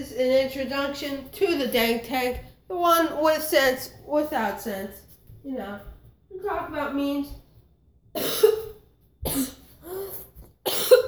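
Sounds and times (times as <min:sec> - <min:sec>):
speech: 0:00.0 - 0:07.4, 0:08.2 - 0:08.6
harsh coughs: 0:08.2 - 0:11.0.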